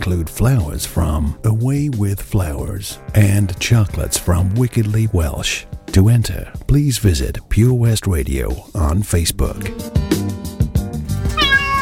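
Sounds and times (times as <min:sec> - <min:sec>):
speech: 0:00.0 - 0:10.5
cat meowing: 0:11.3 - 0:11.8.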